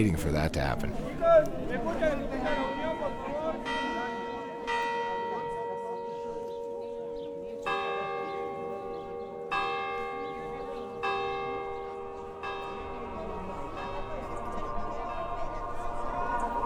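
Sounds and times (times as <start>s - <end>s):
speech: 0.0s - 3.2s
crowd murmuring in a town square: 0.0s - 16.6s
town square clock bell striking noon: 2.6s - 15.6s.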